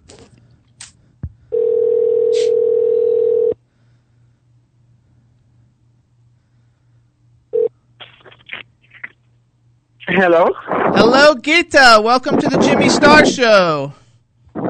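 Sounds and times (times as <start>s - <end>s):
telephone dial tone: 1.5s - 3.6s
speech: 10.2s - 14.0s.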